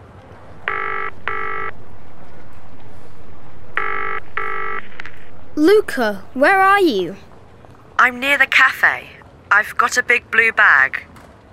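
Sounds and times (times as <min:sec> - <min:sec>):
low hum: 0:00.0 - 0:09.7
telephone ringing in a double-ring pattern: 0:00.7 - 0:01.7, 0:03.8 - 0:04.8
speech: 0:05.6 - 0:07.3, 0:08.0 - 0:11.1.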